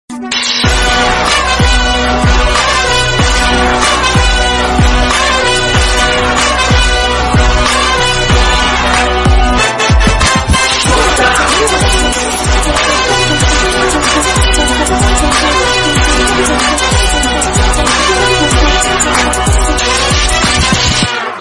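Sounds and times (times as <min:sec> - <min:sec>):
Tamil ringtone background music: 0:00.1 - 0:21.3.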